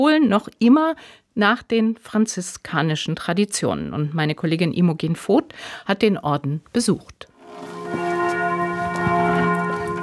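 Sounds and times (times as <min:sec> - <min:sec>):
speech: 0:00.0 - 0:07.8
church bells of a castle and pilgrimage church in Ludwigshafen-Oggersheim, Germany, ringing at noon: 0:07.4 - 0:10.0.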